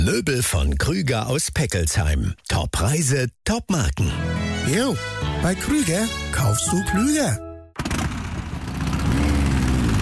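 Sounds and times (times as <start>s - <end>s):
speech: 0.1s - 8.0s
vintage motorcycle engine running: 7.8s - 10.0s.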